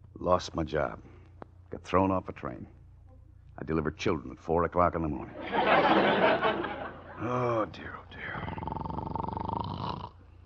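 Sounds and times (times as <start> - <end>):
speech: 0.2 - 1.1, 1.8 - 2.8, 3.6 - 6.6, 7.2 - 8.6
laughter: 5.3 - 7.6
person snoring: 7.2 - 10.4
quiet breathing: 7.2 - 10.4.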